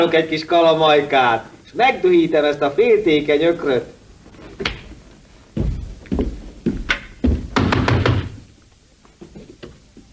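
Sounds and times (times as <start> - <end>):
speech: 0.0 - 4.0
knocking on a wooden door: 7.2 - 8.4.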